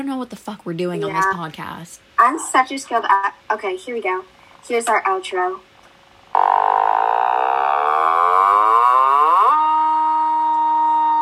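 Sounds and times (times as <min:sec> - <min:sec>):
speech: 0:00.0 - 0:05.7
loud low cow-like mooing drone: 0:06.3 - 0:11.1.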